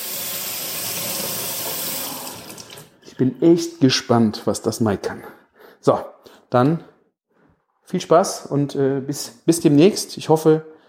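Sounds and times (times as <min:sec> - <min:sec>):
tap water running into sink: 0:00.0 - 0:02.9
speech: 0:03.2 - 0:06.9, 0:07.9 - 0:10.7.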